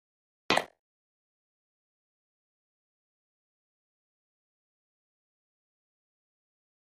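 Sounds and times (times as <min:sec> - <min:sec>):
electronic button hit shimmer: 0:00.5 - 0:00.7.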